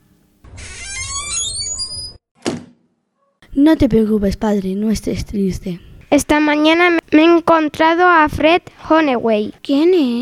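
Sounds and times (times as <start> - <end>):
door creaking open with wavering hinge squeal: 0.5 - 2.6
single solid thunk: 2.4 - 2.8
speech: 3.6 - 10.2.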